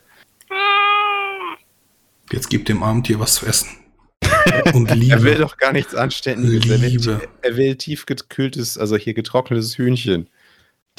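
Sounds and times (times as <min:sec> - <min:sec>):
tomcat meowing into the microphone: 0:00.5 - 0:01.6
speech: 0:02.3 - 0:03.8, 0:04.4 - 0:10.4
laughter: 0:04.2 - 0:06.0.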